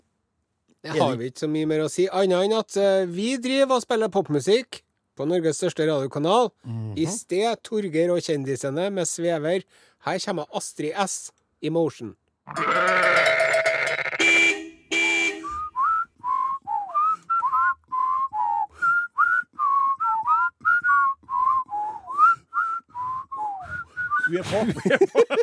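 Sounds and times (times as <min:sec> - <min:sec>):
speech: 0:00.8 - 0:13.2, 0:24.3 - 0:25.4
harsh bleat-like burst: 0:12.5 - 0:14.4
person whistling a lively tune: 0:15.4 - 0:24.4
laughter: 0:24.3 - 0:25.4.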